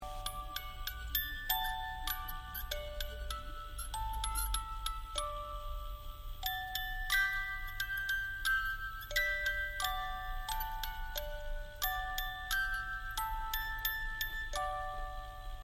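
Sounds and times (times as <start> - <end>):
music box playing: 0.0 - 15.6.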